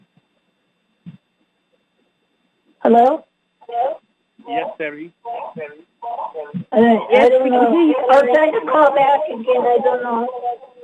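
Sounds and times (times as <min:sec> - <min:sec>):
speech: 0:02.8 - 0:10.6
band-limited voices on a telephone conference line with echo: 0:02.9 - 0:10.8.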